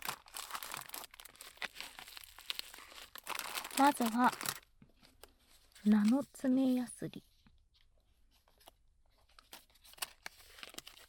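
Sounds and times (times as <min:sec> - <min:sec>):
plastic packaging of new products crinkling and tearing: 0:00.0 - 0:06.2, 0:09.3 - 0:11.0
speech: 0:03.8 - 0:04.5, 0:05.8 - 0:07.3.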